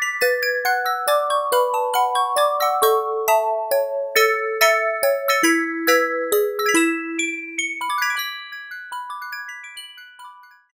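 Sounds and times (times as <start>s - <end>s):
celeste tone on Roland MKS-70 synthesizer: 0.2s - 8.2s.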